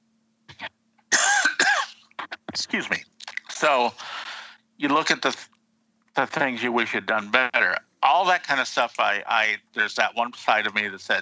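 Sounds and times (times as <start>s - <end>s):
person coughing harshly: 1.1s - 2.6s
speech: 2.7s - 4.1s, 4.8s - 5.5s, 6.2s - 11.1s.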